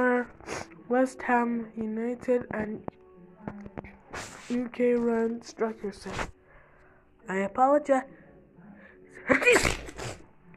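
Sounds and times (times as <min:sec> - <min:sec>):
speech: 0:00.0 - 0:06.4, 0:07.3 - 0:08.2, 0:09.2 - 0:09.8
person sneezing: 0:09.3 - 0:10.2.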